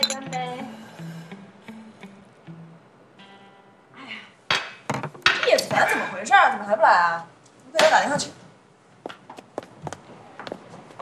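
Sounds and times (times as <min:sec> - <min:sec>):
glasses clinking in a toast: 0:00.0 - 0:00.5
speech: 0:05.8 - 0:08.4.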